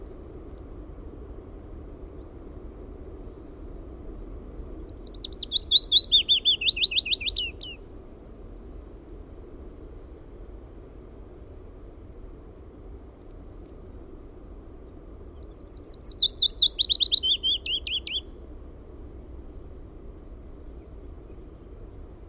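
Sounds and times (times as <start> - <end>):
low background hum: 0.0 - 22.2
willow warbler song: 0.0 - 22.2.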